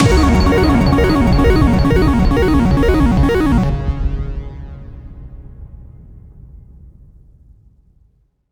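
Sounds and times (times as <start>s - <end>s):
slot machine jackpot: 0.0s - 3.7s.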